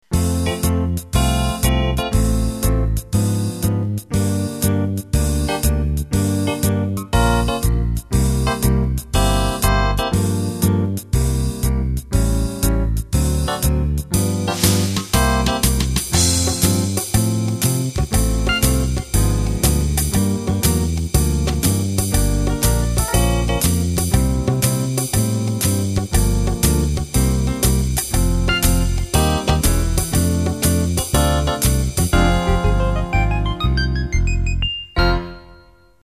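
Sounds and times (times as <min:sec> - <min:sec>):
ballroom swing music: 0:00.0 - 0:35.6.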